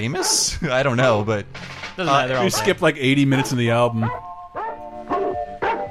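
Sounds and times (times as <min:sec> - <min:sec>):
speech: 0:00.0 - 0:04.2
dog barks spliced at different pitches: 0:00.1 - 0:00.5, 0:03.3 - 0:05.8.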